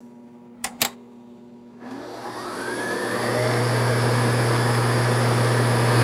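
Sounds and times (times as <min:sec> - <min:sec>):
noisy air conditioner starting up: 0:01.8 - 0:06.0.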